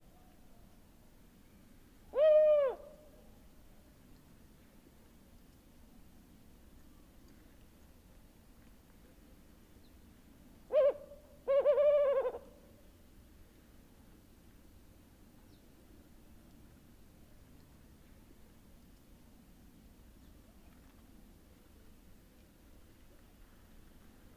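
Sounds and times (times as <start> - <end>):
distant calls of another Maghreb wood owl: 2.1 - 3.0, 10.7 - 12.6
male Maghreb wood owl compound hooting: 2.2 - 2.9, 10.7 - 12.5.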